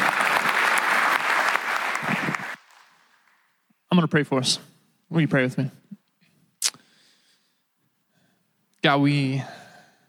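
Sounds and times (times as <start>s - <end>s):
church congregation applauding during a worship service: 0.0s - 3.6s
speech: 4.0s - 5.8s, 8.8s - 9.6s.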